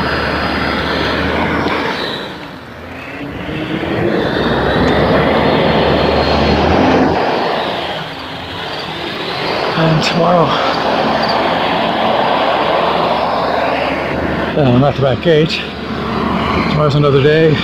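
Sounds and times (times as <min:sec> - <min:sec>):
tractor engine rumbling: 0:00.0 - 0:17.6
speech: 0:10.0 - 0:10.7, 0:14.6 - 0:15.8, 0:16.6 - 0:17.6.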